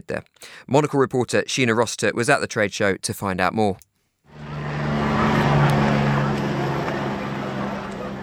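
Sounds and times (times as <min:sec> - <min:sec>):
speech: 0:00.0 - 0:03.9
helicopter rotor blades whirring high over Sao Paulo Brazil: 0:04.3 - 0:08.2.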